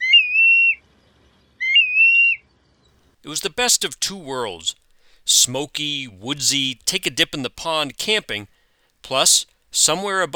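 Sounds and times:
black-bellied plover whistled flight call: 0.0s - 0.8s
speech: 3.2s - 10.3s.

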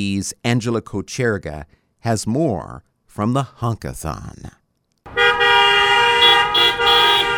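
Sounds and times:
speech: 0.0s - 4.6s
car horns honking in a caravan: 5.1s - 7.3s.

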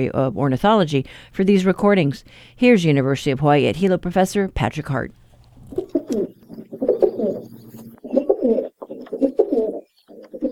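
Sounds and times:
speech: 0.0s - 6.3s
domestic rock pigeon cooing: 5.6s - 10.5s.

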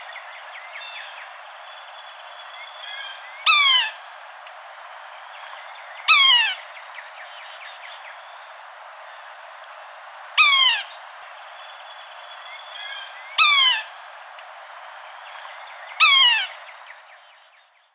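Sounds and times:
Yellow-bellied sapsucker giving nasal mewing calls: 2.8s - 4.1s, 5.9s - 6.8s, 10.4s - 11.2s, 12.6s - 14.0s, 15.4s - 17.0s.

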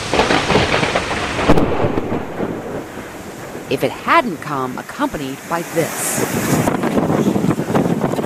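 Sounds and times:
low rumbling thunder: 0.0s - 4.2s, 6.2s - 8.2s
steady dense rain hissing: 0.0s - 8.1s
powerful straight-line storm winds buffeting the microphone: 0.0s - 8.2s
speech: 3.7s - 6.2s.

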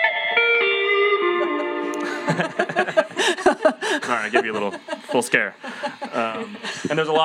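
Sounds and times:
distorted electric guitar with classic rock crunch: 0.0s - 2.9s
laughter: 1.6s - 7.2s
speech: 2.3s - 7.2s.

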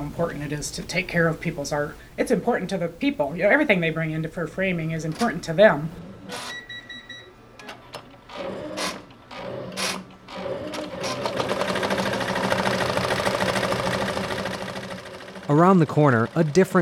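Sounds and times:
speech: 0.2s - 6.6s, 15.5s - 16.7s
embroidery machine stitching hats and flat items running: 5.0s - 16.7s
short tonal beeps: 6.4s - 7.4s.

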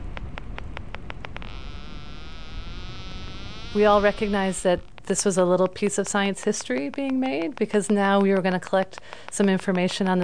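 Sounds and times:
beaked whale clicks recorded by a D-tag: 0.0s - 1.9s, 3.1s - 10.2s
beaked whale dense continuous click buzz: 0.1s - 5.8s
hissing noise: 1.1s - 6.5s
speech: 3.7s - 10.2s.

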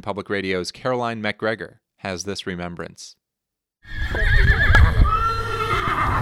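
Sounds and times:
speech: 0.0s - 3.2s
horse whinnying: 3.9s - 6.1s.

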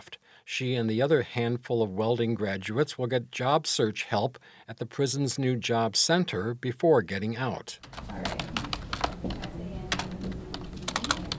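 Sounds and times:
speech: 0.5s - 8.3s
prison inmate typing on a computer keyboard at a prison job center: 7.8s - 11.3s.

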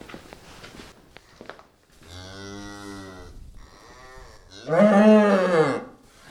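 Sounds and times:
soft rustling footsteps: 0.0s - 2.3s
mother cow with newborn calf mooing a warning in a barn: 2.1s - 6.0s.

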